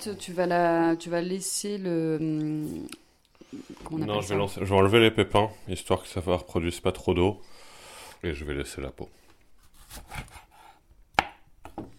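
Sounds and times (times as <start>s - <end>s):
speech: 0.0s - 7.6s, 8.2s - 9.2s
knife chopping avocado into small pieces on a board: 9.8s - 11.9s.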